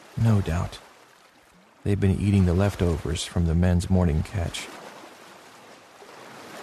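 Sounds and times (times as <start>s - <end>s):
sea water splashing alongside a moving fishermen's boat: 0.0s - 6.6s
speech: 0.2s - 0.9s, 1.8s - 4.8s.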